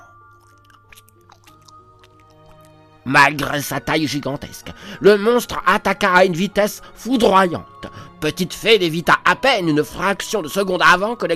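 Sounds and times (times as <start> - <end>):
slimy drool dripping and squishing: 0.0 - 4.9
speech: 3.1 - 11.3.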